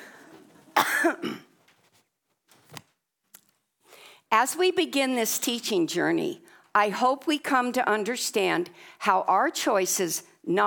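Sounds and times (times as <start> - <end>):
person coughing: 0.8 - 1.6
throat clearing: 0.8 - 1.6
speech: 1.0 - 1.4, 4.3 - 10.6.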